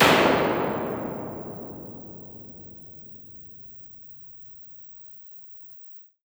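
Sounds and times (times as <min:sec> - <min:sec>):
EMT 140 plate reverb: 0:00.0 - 0:03.1.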